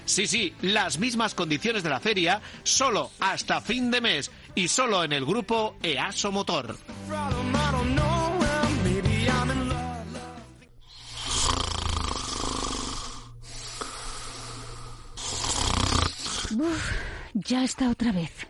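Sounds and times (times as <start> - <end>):
speech: 0.1 - 8.0, 17.5 - 18.4
person snoring loudly: 9.3 - 17.3.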